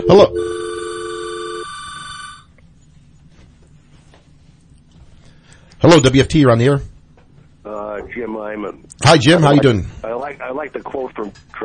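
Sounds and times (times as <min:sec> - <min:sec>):
telephone ringing with an incoming call: 0:00.0 - 0:02.5
speech: 0:00.1 - 0:00.6, 0:05.8 - 0:06.9, 0:07.6 - 0:11.6.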